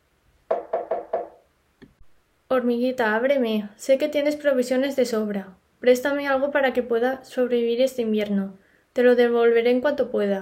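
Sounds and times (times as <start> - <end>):
firm knocks on a door: 0.5 - 1.4
speech: 2.5 - 10.4.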